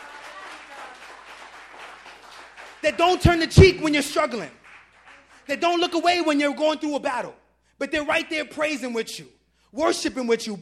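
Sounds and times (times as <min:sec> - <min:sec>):
audience applauding: 0:00.0 - 0:06.0
speech: 0:02.8 - 0:04.6, 0:05.5 - 0:10.6.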